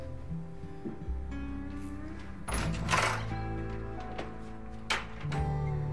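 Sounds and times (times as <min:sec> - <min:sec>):
steady low musical hum: 0:00.0 - 0:05.9
door swinging shut as someone hurries out: 0:02.2 - 0:05.8.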